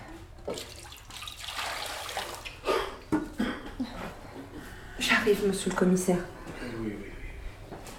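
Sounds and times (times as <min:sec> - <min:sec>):
water poured onto a cloth: 0:00.5 - 0:02.6
speech: 0:05.3 - 0:06.9.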